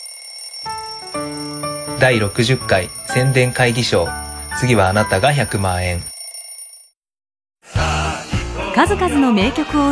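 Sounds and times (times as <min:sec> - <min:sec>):
alarm clock ringing with bright electronic chiming tones: 0:00.0 - 0:07.0
speech: 0:02.0 - 0:06.1, 0:08.8 - 0:09.9.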